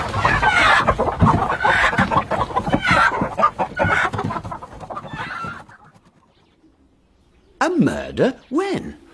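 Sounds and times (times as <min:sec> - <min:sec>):
hen clucking: 0:00.0 - 0:06.7
speech: 0:08.2 - 0:08.9.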